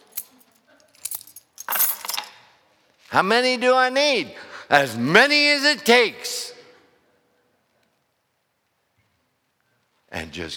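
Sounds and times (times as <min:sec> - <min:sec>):
metal house keys jangling and clinking: 0:00.0 - 0:02.5
speech: 0:03.1 - 0:06.4, 0:10.4 - 0:10.5.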